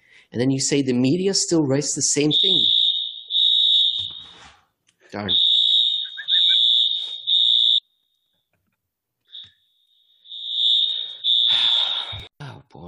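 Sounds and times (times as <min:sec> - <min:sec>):
speech: 0:00.3 - 0:02.7, 0:05.1 - 0:05.4
shrill high-pitched fire alarm blaring: 0:01.8 - 0:04.6, 0:05.2 - 0:08.4, 0:09.3 - 0:12.3.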